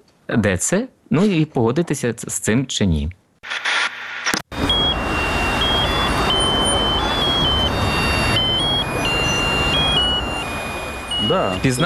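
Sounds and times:
speech: 0.3s - 3.7s, 11.3s - 11.8s
street traffic at a ground-level pedestrian crossing in the centre of Rivne: 4.5s - 11.8s
thin electronic tones stepping between pitches at a pedestrian crossing: 4.5s - 11.8s.

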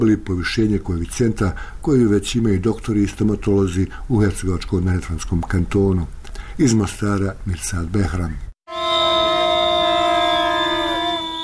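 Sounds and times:
speech: 0.0s - 8.5s
trumpets blaring at a street protest march by striking health workers: 8.7s - 11.4s
whistles blowing at a street protest march by striking health workers: 8.7s - 11.4s.

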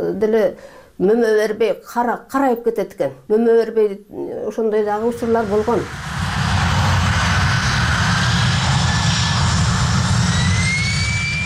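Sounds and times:
speech: 0.0s - 6.2s
airplane passing low over a village beside an air base runway: 5.0s - 11.4s
thin rising whine: 5.0s - 11.4s.

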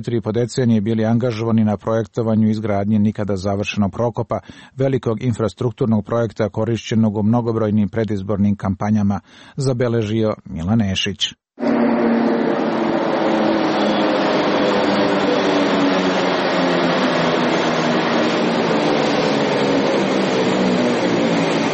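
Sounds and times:
speech: 0.0s - 12.0s
suburban commuter train pulling in at a railway station platform in Serbia: 11.6s - 21.7s.

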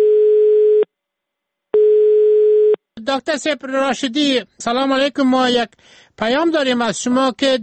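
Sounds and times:
electronic telephone line tone while placing a call: 0.0s - 0.9s, 1.8s - 2.8s
speech: 3.1s - 7.6s.

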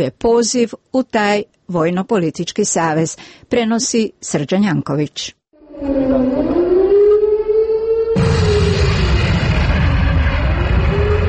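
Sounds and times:
speech: 0.0s - 6.5s
civil defense siren at a protest rally: 5.5s - 11.2s
dense low rumbling bombing noise: 5.6s - 11.2s.

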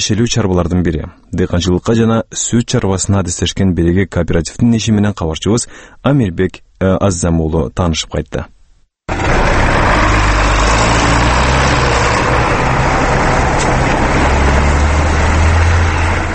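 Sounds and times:
speech: 0.0s - 9.4s
wheeled American John Deere tractor ploughing a field at the edge of a village: 9.1s - 16.3s.

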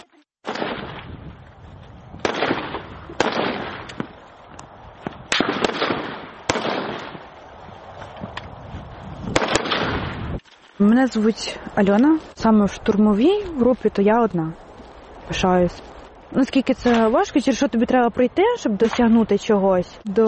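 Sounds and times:
assault rifle gunshots at a firing range during training: 0.5s - 1.0s, 2.2s - 3.9s, 5.3s - 7.2s, 9.4s - 10.2s
speech: 10.9s - 14.6s, 15.3s - 20.2s.

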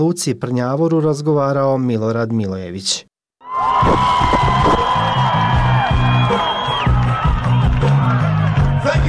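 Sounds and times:
speech: 0.0s - 3.1s
large concert crowd cheering and whooping: 3.4s - 8.9s.

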